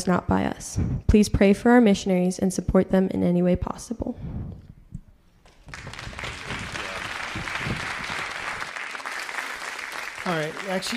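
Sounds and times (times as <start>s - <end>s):
speech: 0.0s - 4.4s, 10.3s - 10.9s
audience applause: 5.6s - 10.9s.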